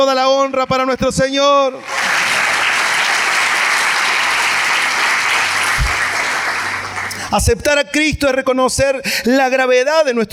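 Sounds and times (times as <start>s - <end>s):
speech: 0.0s - 2.0s, 7.3s - 10.3s
audience applauding: 1.8s - 7.4s.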